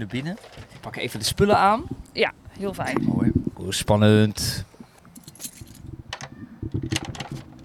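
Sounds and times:
speech: 0.0s - 4.7s
bunch of keys jingling: 5.2s - 5.8s.

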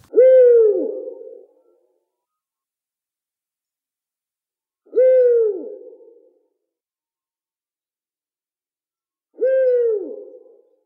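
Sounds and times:
Eurasian eagle-owl hooting: 0.0s - 1.5s, 4.8s - 6.3s, 9.4s - 10.6s.

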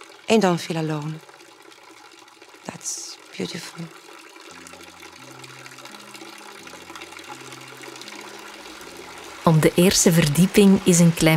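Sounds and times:
fountain water splashing at night in Belgium: 0.0s - 11.3s
speech: 0.3s - 1.3s, 3.4s - 4.0s, 9.5s - 11.3s.

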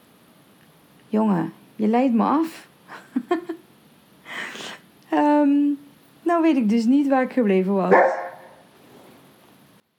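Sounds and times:
speech: 1.1s - 3.4s, 5.1s - 8.2s
laughter: 2.9s - 3.6s
dog barking: 7.9s - 8.7s.

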